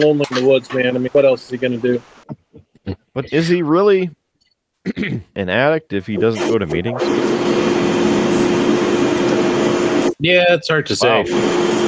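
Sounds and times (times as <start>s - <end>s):
speech: 0.0s - 2.2s, 3.2s - 4.2s, 4.8s - 7.8s, 10.2s - 11.8s
vacuum cleaner or fan whirring: 7.0s - 10.1s, 11.0s - 11.8s.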